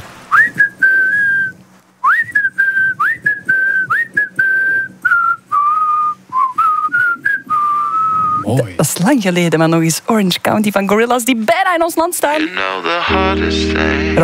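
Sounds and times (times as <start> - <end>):
person whistling a simple tune: 0.3 - 8.4
speech: 8.5 - 14.2.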